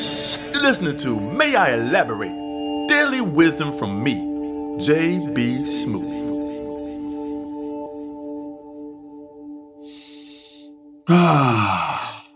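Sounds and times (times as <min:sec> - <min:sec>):
speech: 0:00.6 - 0:06.2, 0:11.1 - 0:11.9
deep breath: 0:09.8 - 0:12.3.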